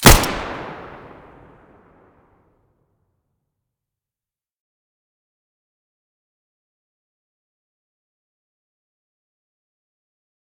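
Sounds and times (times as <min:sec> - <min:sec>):
Five-seveN pistol muzzle blast: 0:00.0 - 0:01.6.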